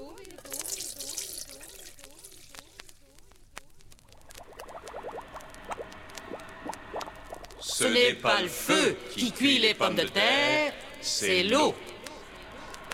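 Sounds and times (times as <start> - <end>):
tap water running into a pot: 0.4 - 2.8, 4.2 - 7.8
speech: 7.8 - 11.9.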